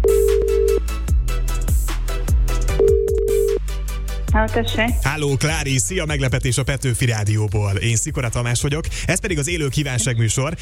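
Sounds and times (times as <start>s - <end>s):
telephone ringback tone of an outgoing call during a live radio broadcast: 0.0s - 0.8s, 2.8s - 3.6s
rhythmic music with thumping beats: 0.0s - 10.6s
speech: 4.4s - 10.6s.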